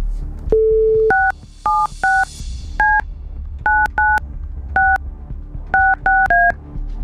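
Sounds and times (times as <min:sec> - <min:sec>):
DTMF touch-tone beeps of a phone number being keyed in: 0:00.6 - 0:03.0, 0:03.7 - 0:04.2, 0:04.8 - 0:05.0, 0:05.8 - 0:06.6.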